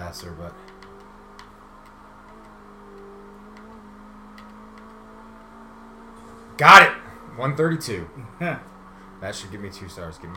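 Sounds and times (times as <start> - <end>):
video game car engine revving for a burnout start: 0.0 - 10.3
speech: 0.1 - 0.7, 6.6 - 10.3
faint regular ticking clicks: 0.1 - 5.0.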